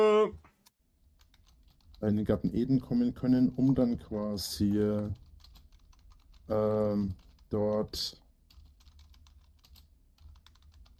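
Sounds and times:
short bursts of speech: 0:00.0 - 0:00.4, 0:02.0 - 0:05.2, 0:06.5 - 0:08.2
typing on a computer keyboard: 0:01.0 - 0:02.2, 0:04.8 - 0:10.9.

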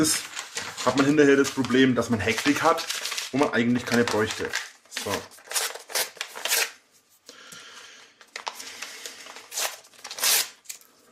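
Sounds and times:
speech: 0:00.0 - 0:05.4
plastic or paper packages being torn open: 0:00.0 - 0:06.8, 0:08.2 - 0:10.9
rustling and handling noise: 0:00.0 - 0:11.0.

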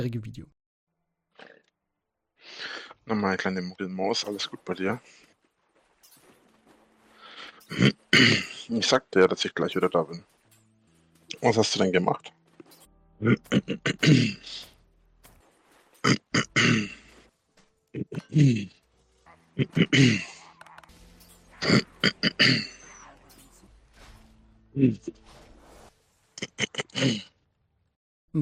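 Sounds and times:
speech: 0:00.0 - 0:00.6, 0:02.4 - 0:05.2, 0:07.7 - 0:10.3, 0:11.3 - 0:12.4, 0:13.2 - 0:14.7, 0:16.0 - 0:17.0, 0:18.0 - 0:18.8, 0:19.6 - 0:20.4, 0:21.6 - 0:22.8, 0:24.8 - 0:25.3, 0:26.4 - 0:27.3
person clearing throat into microphone: 0:07.7 - 0:08.6, 0:13.2 - 0:14.4, 0:16.1 - 0:17.0, 0:19.6 - 0:20.7, 0:21.6 - 0:22.8, 0:26.4 - 0:27.3.

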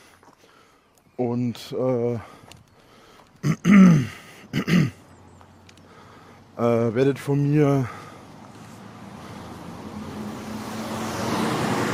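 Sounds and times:
speech: 0:01.2 - 0:02.4, 0:06.6 - 0:08.0
loud bus passing: 0:03.9 - 0:06.6, 0:07.8 - 0:11.9.

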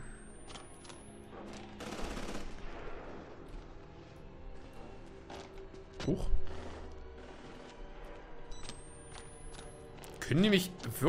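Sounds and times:
video game gunfire as soldiers open fire: 0:01.8 - 0:03.4
speech: 0:06.1 - 0:06.4, 0:10.3 - 0:11.0.

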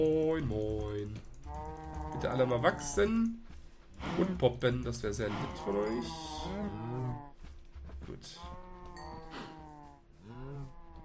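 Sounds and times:
speech: 0:00.0 - 0:00.8, 0:02.2 - 0:03.4, 0:04.0 - 0:07.3, 0:08.1 - 0:08.6
cows mooing in a video game on a farm: 0:01.4 - 0:03.3, 0:05.2 - 0:07.4, 0:08.3 - 0:11.0.

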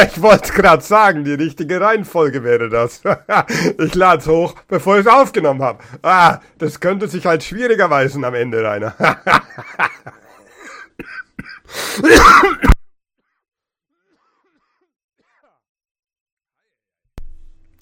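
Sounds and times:
speech: 0:00.0 - 0:10.2, 0:11.0 - 0:12.8
laughter: 0:02.9 - 0:04.0, 0:08.8 - 0:10.8
person coughing: 0:10.5 - 0:12.9, 0:14.0 - 0:15.6.

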